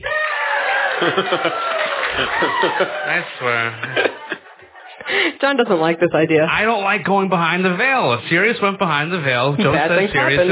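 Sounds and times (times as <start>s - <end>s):
live audience cheering and whooping: 0.0s - 5.1s
laughter: 0.1s - 5.6s, 9.4s - 10.4s
speech: 1.0s - 4.2s, 5.4s - 10.4s.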